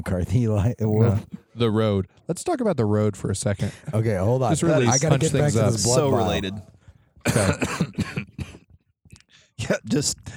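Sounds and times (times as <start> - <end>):
speech: 0.0 - 8.2, 9.6 - 10.3
harsh rasping coughing: 7.2 - 8.7.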